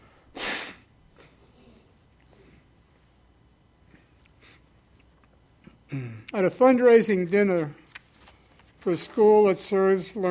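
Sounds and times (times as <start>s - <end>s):
nose blowing: 0.3s - 0.9s
speech: 5.9s - 7.8s, 8.8s - 10.2s.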